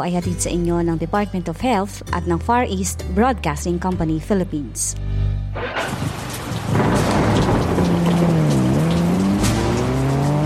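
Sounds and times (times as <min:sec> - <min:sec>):
speech: 0:00.0 - 0:06.2
car passing: 0:05.6 - 0:10.4
car tires squealing: 0:05.6 - 0:10.4
heavy rain pouring: 0:05.6 - 0:10.4
thunder-like rumble: 0:05.6 - 0:10.4.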